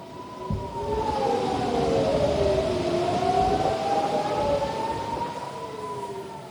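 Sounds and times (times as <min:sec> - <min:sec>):
air raid warning sirens wailing in northern Israel: 0:00.0 - 0:06.4
steady rumble: 0:00.4 - 0:05.1.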